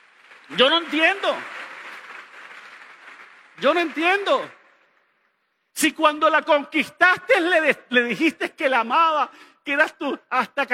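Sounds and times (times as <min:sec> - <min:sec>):
audience clapping: 0:00.0 - 0:05.6
speech: 0:00.5 - 0:01.6, 0:03.6 - 0:04.6, 0:05.8 - 0:10.7.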